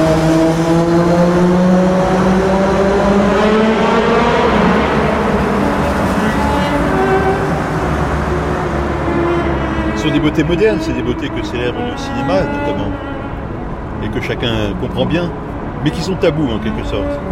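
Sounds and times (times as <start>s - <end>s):
motorcycle passing by with loud engine whine: 0.0s - 13.3s
steady roar of traffic-like noise: 0.0s - 17.3s
speech: 10.2s - 13.2s, 14.0s - 17.3s.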